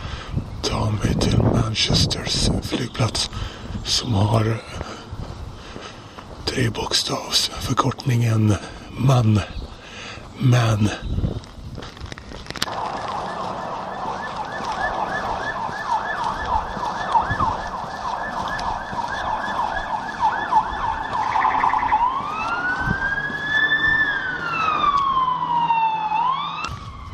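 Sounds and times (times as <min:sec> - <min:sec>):
steady street traffic: 0:00.0 - 0:27.1
speech: 0:00.9 - 0:05.0, 0:06.5 - 0:09.6, 0:10.4 - 0:11.3
police car sirens wailing and yelping: 0:12.6 - 0:27.1.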